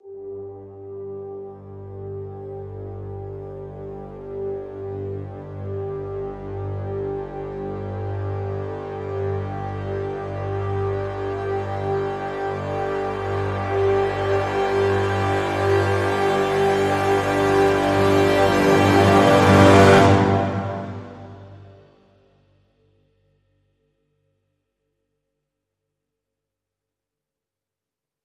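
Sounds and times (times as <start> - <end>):
full brass swell in G: 0.0 - 22.0.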